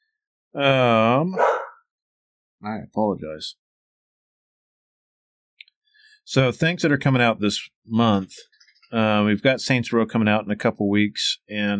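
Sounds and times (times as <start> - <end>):
speech: 0.6 - 1.5, 2.6 - 3.6, 6.3 - 11.7
excited dog barking with a whining tone: 1.4 - 1.8.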